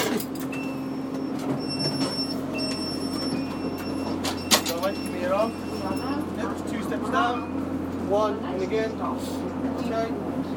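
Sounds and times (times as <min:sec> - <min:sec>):
train doors sliding open: 0:00.0 - 0:06.2
low rumble of a stationary train carriage: 0:00.0 - 0:10.5
thin high-pitched electronic tones: 0:00.5 - 0:06.4
speech: 0:08.1 - 0:10.3.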